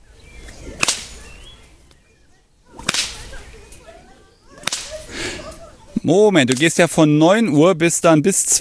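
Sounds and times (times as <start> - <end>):
quiet outdoor ambience: 0.0 - 8.5
whip being swung and cracked: 0.6 - 1.3, 2.7 - 3.5, 4.6 - 5.1, 6.5 - 6.7
whip swishing: 0.7 - 1.2, 2.8 - 3.4, 4.6 - 5.1
speech: 6.0 - 8.5.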